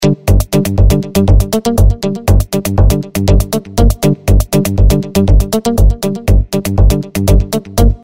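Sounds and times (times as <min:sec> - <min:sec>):
funk dance rhythm loop: 0:00.0 - 0:08.0.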